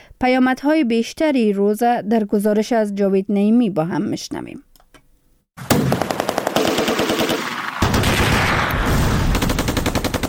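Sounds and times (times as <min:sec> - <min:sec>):
speech: 0:00.2 - 0:04.7
automatic gunfire bursts in Kabul Afghanistan from fighting and celebratory shooting: 0:05.7 - 0:08.6, 0:09.3 - 0:10.2.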